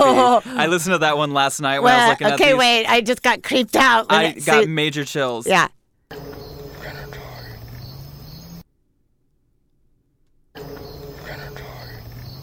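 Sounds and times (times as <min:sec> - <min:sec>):
laughter: 0:00.0 - 0:02.8, 0:03.9 - 0:04.7
speech: 0:00.1 - 0:05.8
crickets chirping in a dense buzzing chorus at Mount Cutha Queensland Australia: 0:06.2 - 0:08.6, 0:10.6 - 0:12.4.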